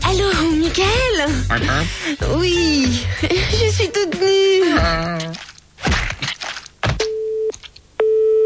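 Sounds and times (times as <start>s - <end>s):
speech: 0.2s - 6.0s
telephone busy tone after the caller hangs up: 7.1s - 8.4s.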